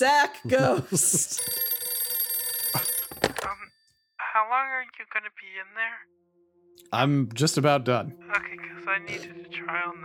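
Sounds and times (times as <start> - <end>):
speech: 0.0 - 1.8, 4.5 - 6.2, 6.9 - 10.0
telephone ringing with an electronic trill: 1.0 - 4.1.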